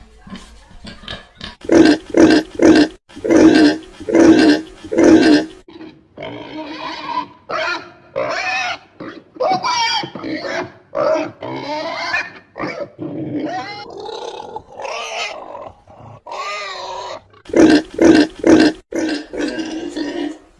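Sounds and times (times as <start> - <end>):
pig: 0.2 - 20.5.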